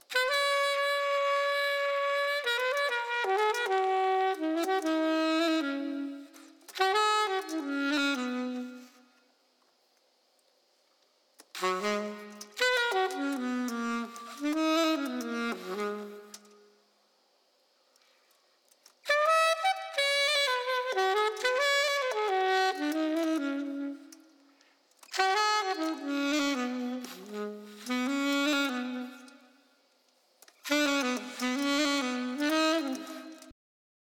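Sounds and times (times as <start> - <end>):
saxophone loops: 0.1 - 9.1, 11.4 - 16.8, 19.0 - 24.3, 25.0 - 29.6, 30.5 - 33.5.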